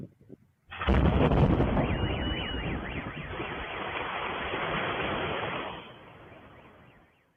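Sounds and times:
aerial bomb from an Su-34 aircraft exploding: 0.7 - 6.6
car alarm wailing: 0.8 - 7.3.

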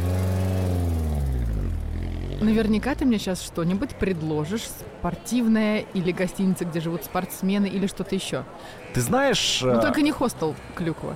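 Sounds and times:
taxi engine droning as the car drives to a hotel: 0.0 - 4.0
speech: 2.4 - 11.1.

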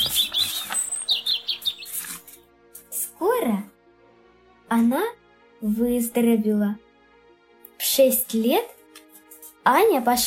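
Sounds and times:
small birds chirping and singing: 0.0 - 2.4
speech: 4.8 - 6.8, 8.0 - 8.8, 9.6 - 10.2.

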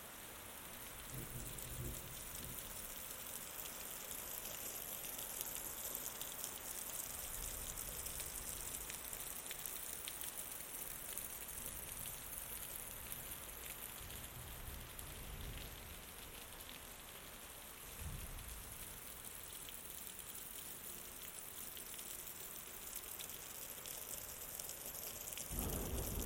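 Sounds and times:
night subtropical downpour in a dense steady hiss: 0.2 - 26.2
brief low thunder rumbles: 1.1 - 2.8, 25.5 - 26.2.

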